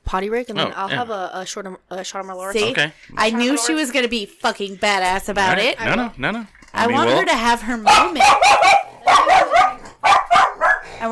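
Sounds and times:
speech: 0.1s - 9.2s
dog barking and yelping: 7.8s - 11.0s.

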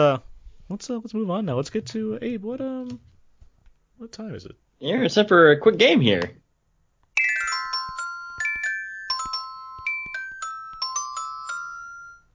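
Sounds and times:
speech: 0.0s - 3.1s, 4.0s - 6.4s
phone ringtone chime jingle of bell tones: 7.2s - 12.3s.

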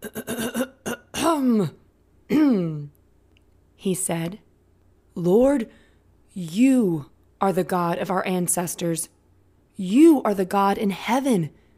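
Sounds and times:
person clearing throat before a prayer: 0.0s - 1.7s, 2.3s - 2.9s
speech: 1.3s - 2.9s, 3.8s - 4.4s, 5.2s - 5.8s, 6.4s - 9.2s, 9.8s - 11.6s.

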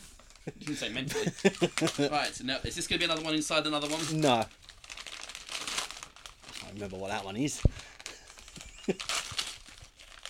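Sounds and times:
speech: 0.4s - 4.7s, 6.8s - 7.9s, 8.9s - 9.2s
wrapping paper crinkling as a present is unwrapped: 1.4s - 10.2s.

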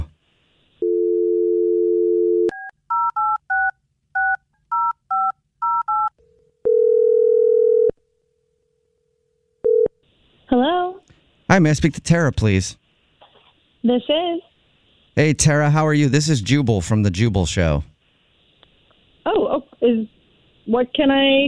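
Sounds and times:
steady phone dial tone: 0.8s - 7.9s, 9.6s - 9.9s
speech: 11.6s - 12.8s, 13.8s - 14.5s, 15.2s - 17.9s, 19.2s - 21.4s.

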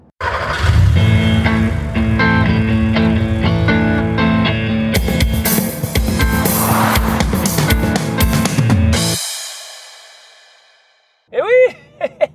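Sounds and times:
car engines revving: 0.2s - 9.0s
loud energetic podcast intro jingle music: 5.0s - 9.2s
laughter: 11.5s - 12.3s.

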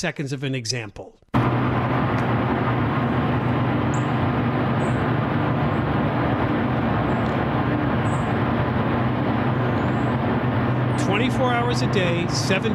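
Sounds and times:
speech: 0.0s - 1.2s, 11.2s - 12.7s
heavy mechanical roar from a cryptocurrency mining data center: 1.4s - 12.7s.

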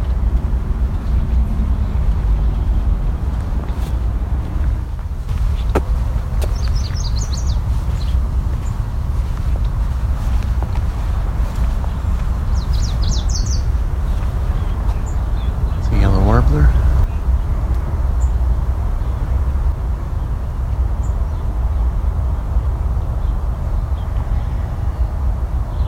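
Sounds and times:
loud steady low rumble like a boat engine: 0.0s - 25.8s
eastern kingbird sputtering calls: 5.4s - 8.8s, 11.8s - 17.2s.

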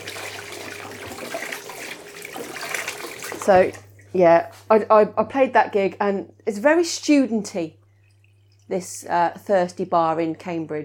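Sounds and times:
tap water running into a sink while washing hands: 0.0s - 3.9s
speech: 3.4s - 7.8s, 8.7s - 10.8s.

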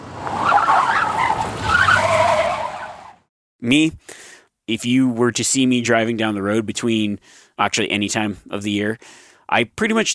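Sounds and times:
truck scraping and skidding: 0.0s - 3.3s
speech: 3.6s - 10.1s.

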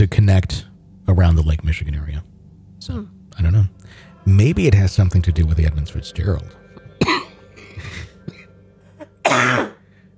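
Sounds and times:
speech: 0.0s - 7.2s, 9.3s - 9.7s
person coughing while trying to laugh: 7.0s - 9.8s.

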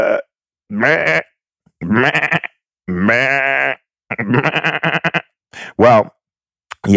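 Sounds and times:
sheep bleating: 0.1s - 5.2s
speech: 0.7s - 1.3s, 1.9s - 3.4s, 4.3s - 4.8s, 5.8s - 6.2s.

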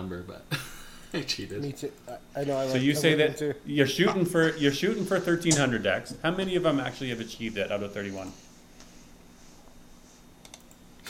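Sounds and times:
speech: 0.1s - 8.5s
soft computer typing and clicking: 10.4s - 10.8s.

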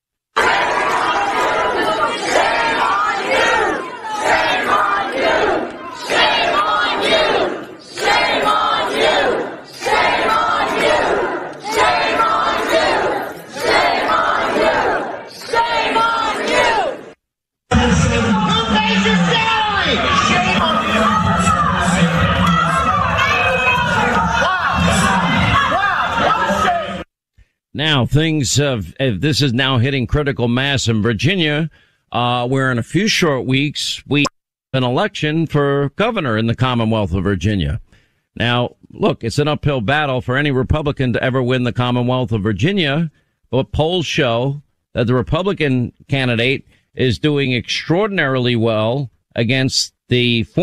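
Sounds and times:
angry crowd of parents yelling at school board meeting in Loudoun County Virginia: 0.4s - 27.1s
speech: 28.1s - 50.6s.

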